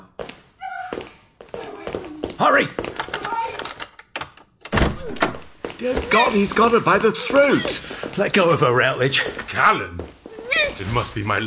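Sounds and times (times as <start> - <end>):
speech: 2.4 - 3.0, 5.8 - 10.0, 10.6 - 11.4
door opening with a heavy thunk and clatter: 4.7 - 5.5.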